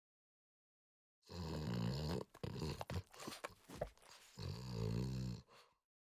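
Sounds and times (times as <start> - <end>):
French Bulldog snorting: 1.3 - 5.6.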